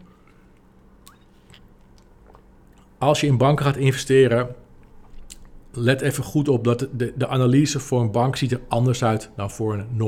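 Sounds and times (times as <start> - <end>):
low hum: 0.0 - 10.0
person sipping water: 1.1 - 3.0
speech: 3.0 - 4.6, 5.8 - 10.0.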